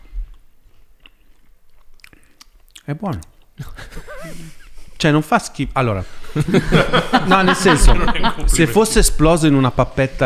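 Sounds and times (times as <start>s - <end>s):
someone chewing an edible wax moth larva with wet crunching: 0.3s - 3.6s
speech: 2.9s - 10.2s
laughter: 3.6s - 5.0s, 6.0s - 9.6s.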